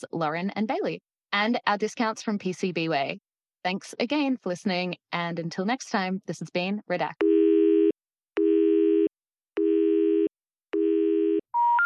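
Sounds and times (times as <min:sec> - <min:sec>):
speech: 0:00.0 - 0:07.3
telephone error tone for an unrecognized dialed number: 0:07.2 - 0:11.8.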